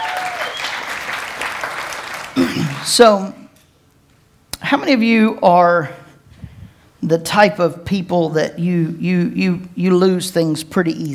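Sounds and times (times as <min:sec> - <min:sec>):
church congregation applauding at an Easter morning service: 0:00.0 - 0:03.0
speech: 0:02.4 - 0:03.4, 0:04.7 - 0:06.0, 0:07.0 - 0:11.1.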